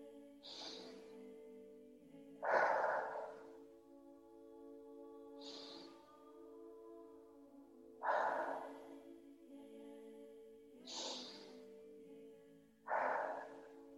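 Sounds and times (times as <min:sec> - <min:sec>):
person breathing in through nose, out through mouth: 0:00.0 - 0:01.2, 0:02.4 - 0:03.7, 0:05.3 - 0:06.2, 0:08.0 - 0:09.1, 0:10.8 - 0:11.7, 0:12.9 - 0:13.9
quiet sustained musical drone: 0:00.0 - 0:13.9.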